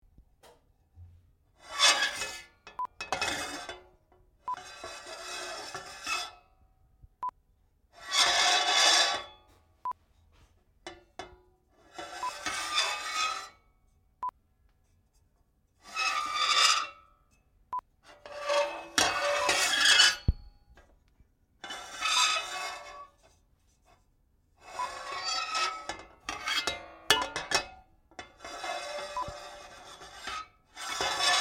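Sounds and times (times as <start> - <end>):
frying pan metal scraping: 1.6 - 6.4, 8.0 - 9.5, 10.9 - 13.6, 15.8 - 17.2, 18.1 - 20.6, 21.6 - 24.0, 24.6 - 31.3.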